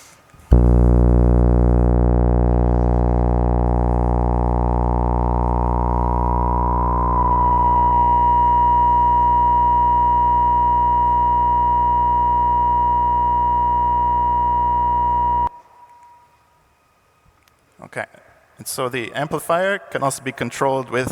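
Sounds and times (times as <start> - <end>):
synth sawtooth drone with resonant filter cranked up: 0.5 - 15.5
speech: 18.9 - 21.1.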